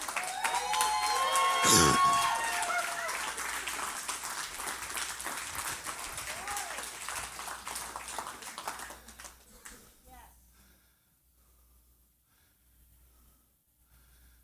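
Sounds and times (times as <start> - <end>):
church audience cheers and whistles: 0.0 - 3.6, 6.3 - 7.0
church audience applauding: 0.0 - 9.8.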